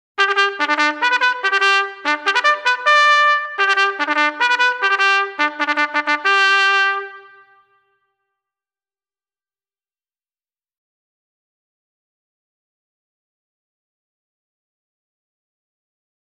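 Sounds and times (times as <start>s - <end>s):
military drill call as ceremonial music: 0.2s - 7.1s.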